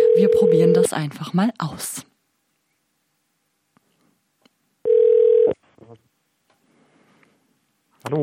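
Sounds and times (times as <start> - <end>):
telephone ringing tone: 0.0 - 0.8, 4.8 - 5.6
speech: 0.2 - 2.1, 8.0 - 8.2.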